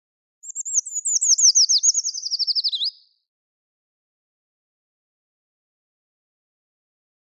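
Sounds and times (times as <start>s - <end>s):
Eurasian treecreeper Certhia familiaris singing high thin song: 0.4s - 3.2s.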